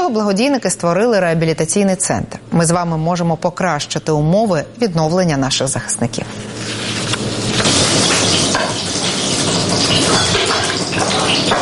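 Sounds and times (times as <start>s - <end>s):
speech: 0.1s - 6.9s
cutlets sizzling in a frying pan: 6.4s - 11.6s.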